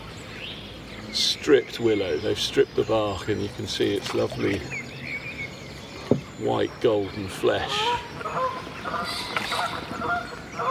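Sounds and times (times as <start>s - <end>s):
speech: 1.2s - 4.8s, 6.4s - 10.6s
geese honking as they are scared off along a river: 7.5s - 10.6s.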